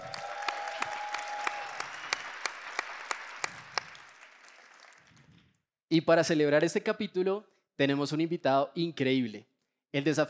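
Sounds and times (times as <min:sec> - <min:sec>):
live audience applause: 0:00.0 - 0:05.3
sharper louder claps: 0:00.0 - 0:05.4
speech: 0:05.9 - 0:10.2.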